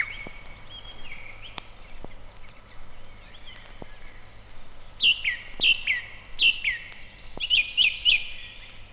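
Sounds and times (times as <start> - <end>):
background hiss: 0.0 - 8.9
song thrush singing from the top of a tall spruce in a spring forest: 0.0 - 8.9.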